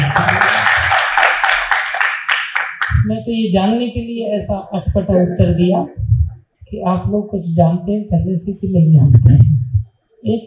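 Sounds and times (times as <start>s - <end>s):
crowd clapping: 0.0s - 3.1s
speech: 3.3s - 6.0s, 6.7s - 9.5s, 10.2s - 10.4s.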